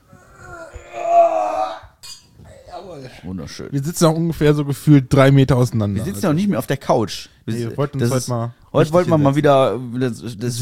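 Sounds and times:
wine glasses clinking together in a toast: 0:02.0 - 0:02.3
speech: 0:03.0 - 0:10.6.

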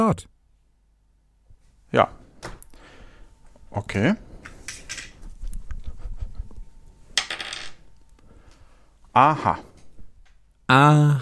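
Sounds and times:
speech: 0:00.0 - 0:00.3, 0:01.9 - 0:02.2, 0:03.7 - 0:04.2, 0:09.2 - 0:09.7, 0:10.7 - 0:11.1
dice tumbling and knocking across a hard tabletop: 0:07.2 - 0:07.8.

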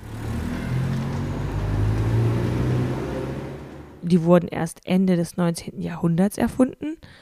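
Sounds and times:
car engine revving: 0:00.0 - 0:04.2
speech: 0:04.1 - 0:07.2.

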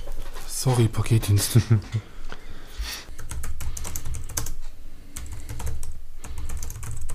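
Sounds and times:
speech: 0:00.6 - 0:02.1
typing on a computer keyboard: 0:03.2 - 0:07.1.

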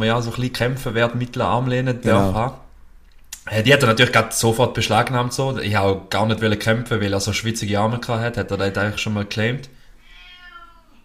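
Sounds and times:
speech: 0:00.0 - 0:02.6, 0:03.4 - 0:09.8
pet cat meowing in the background: 0:10.0 - 0:11.0.

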